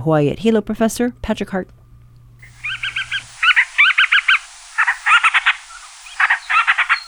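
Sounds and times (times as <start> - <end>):
speech: 0.0 - 1.8
band-rumped storm petrel raspy chattering call: 2.4 - 7.0
faint low hum: 2.4 - 7.0.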